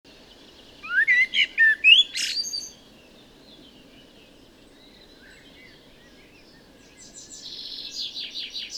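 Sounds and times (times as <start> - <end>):
Common blackbird Turdus merula warbled phrase: 0.1 - 8.7.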